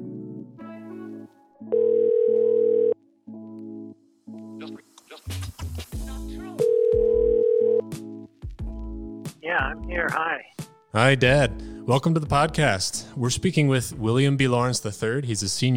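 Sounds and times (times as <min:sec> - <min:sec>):
telephone dial tone: 0:01.7 - 0:03.0, 0:06.6 - 0:07.8
speech: 0:09.9 - 0:15.7.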